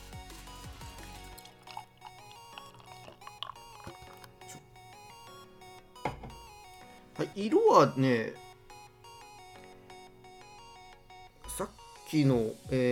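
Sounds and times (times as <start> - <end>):
beer poured gently from a can into a glass: 1.4 - 4.3
speech: 7.2 - 8.4, 11.6 - 12.8.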